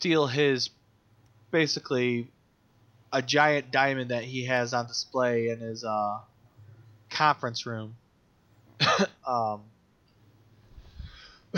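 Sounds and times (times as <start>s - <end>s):
speech: 0.0s - 0.8s, 1.5s - 2.4s, 3.1s - 6.3s, 7.1s - 8.0s, 8.8s - 9.7s
sharp cough: 8.8s - 9.2s
quiet breathy breathing: 10.6s - 11.5s.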